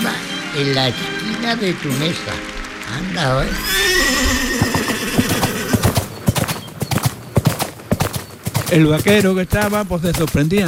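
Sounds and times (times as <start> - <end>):
speech: 0.5 - 4.6, 8.7 - 10.6
horse whinnying: 3.4 - 6.2
hooves clip-clopping on a hard surface: 3.4 - 10.6.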